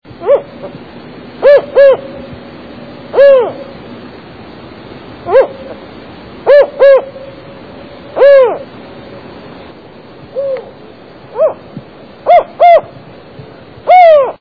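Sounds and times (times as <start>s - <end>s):
spotted owl call: 0.2s - 0.8s, 1.4s - 2.4s, 3.1s - 3.8s, 5.2s - 5.8s, 6.4s - 7.4s, 8.2s - 8.7s, 10.3s - 11.6s, 12.2s - 13.0s, 13.9s - 14.4s.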